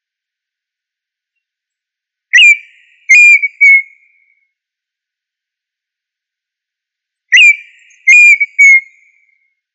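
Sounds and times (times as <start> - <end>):
tinamou whistled call: 2.4 - 4.0, 7.4 - 9.0.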